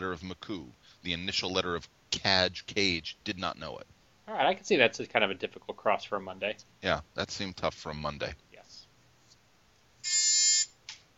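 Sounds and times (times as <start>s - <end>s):
speech: 0.0s - 8.4s, 10.0s - 10.3s
game show buzzer: 10.0s - 10.8s.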